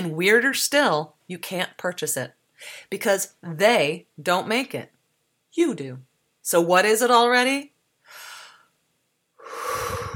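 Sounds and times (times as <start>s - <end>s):
speech: 0.0s - 8.2s
human breathing: 8.0s - 8.7s, 9.4s - 10.1s.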